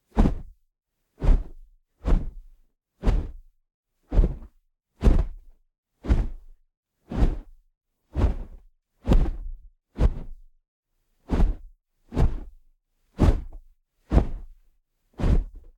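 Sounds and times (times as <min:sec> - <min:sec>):
fast short swings of a t-shirt making swipes and whooshes: 0:00.1 - 0:00.5, 0:01.2 - 0:03.5, 0:04.1 - 0:06.5, 0:07.1 - 0:10.5, 0:11.2 - 0:12.6, 0:13.2 - 0:14.6, 0:15.2 - 0:15.7.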